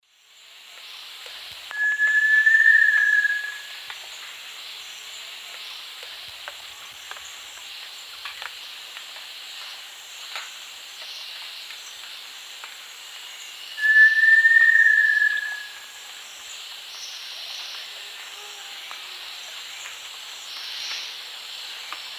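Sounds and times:
Crypturellus soui call in South America eastern lowlands: 1.7s - 3.7s, 13.8s - 15.9s.

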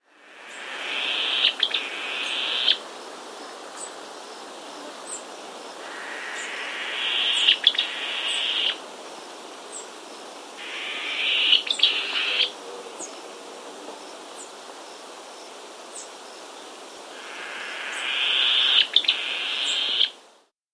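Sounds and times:
Yapacana antbird calling in South America: 0.3s - 2.8s, 5.8s - 8.8s, 10.6s - 12.5s, 17.1s - 20.2s.

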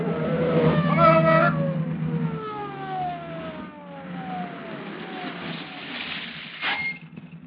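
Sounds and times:
police motorcycle engine droning: 0.0s - 5.8s
wavering police motorcycle siren: 0.0s - 6.4s.

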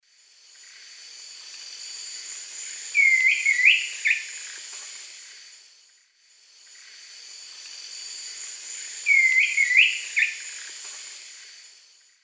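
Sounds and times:
Chiroxiphia pareola calling: 3.0s - 4.4s, 9.1s - 10.6s.

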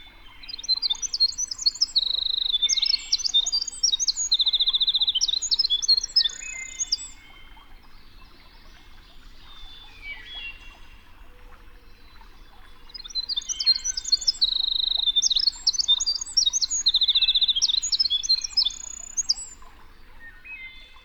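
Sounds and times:
winter wren bubbling song: 0.0s - 21.0s.

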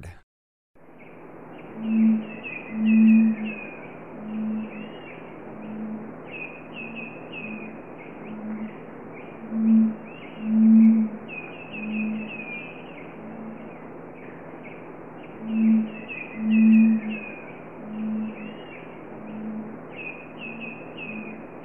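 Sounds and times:
Red-ruffed Fruitcrow calling in Ecuador: 1.8s - 21.6s.

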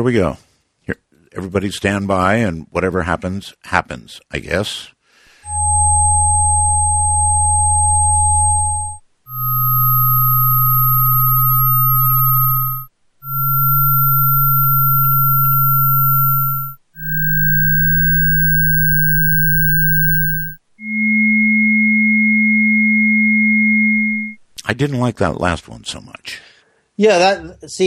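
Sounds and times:
speech: 0.0s - 5.8s, 24.8s - 27.8s
steady electronic sine-wave tones rising in pitch: 5.4s - 24.4s.

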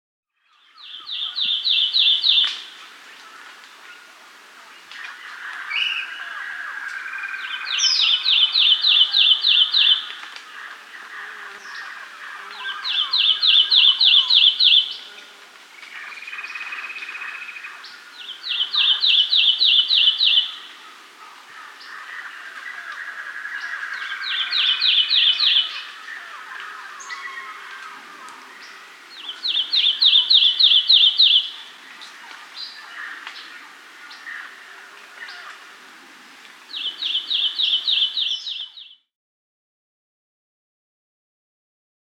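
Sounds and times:
Lemon-chested Greenlet Hylophilus thoracicus calling in Peru: 0.4s - 2.8s, 5.0s - 10.2s, 11.0s - 15.1s, 15.9s - 20.7s, 21.8s - 28.0s, 28.6s - 31.6s, 36.7s - 39.1s.

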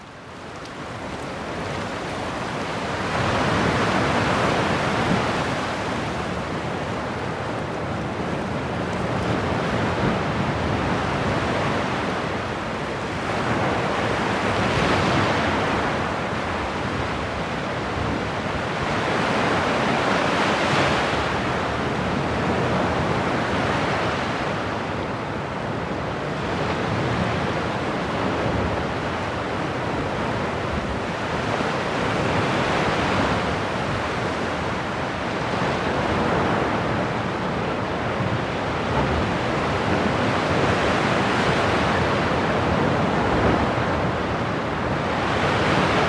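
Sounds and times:
rain: 0.0s - 46.0s.

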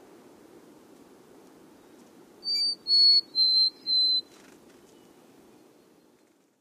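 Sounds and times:
faint low background hiss: 0.0s - 6.6s
mountain chickadee song of clear whistled notes: 2.4s - 4.4s.

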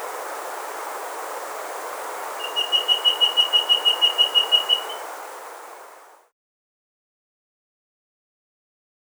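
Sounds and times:
soft background hiss: 0.0s - 6.2s
rusty-breasted antpitta whistling in South America: 2.4s - 5.1s.

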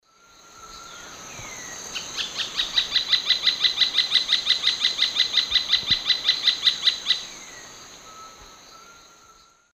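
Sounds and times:
Veniliornis passerinus calls in the Eastern Lowlands of South America: 0.9s - 8.4s.

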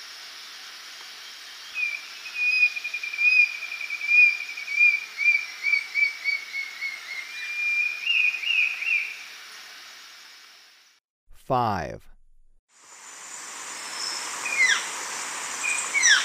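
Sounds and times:
steady high hiss: 0.0s - 5.6s, 7.9s - 11.0s, 12.8s - 16.2s
Brown-billed scythebill song of clear whistled notes in Ecuador: 1.7s - 9.2s
speech: 11.5s - 12.1s.

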